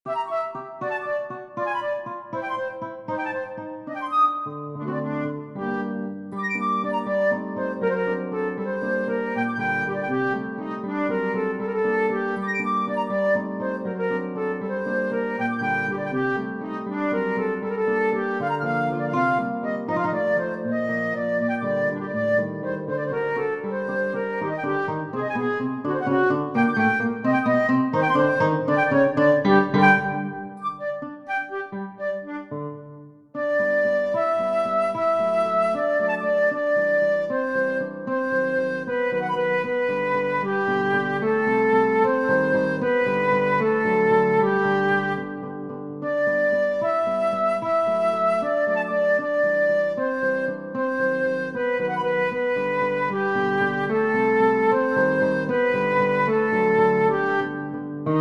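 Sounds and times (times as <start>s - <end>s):
guitar: 0.0s - 58.1s
flute: 0.1s - 58.1s.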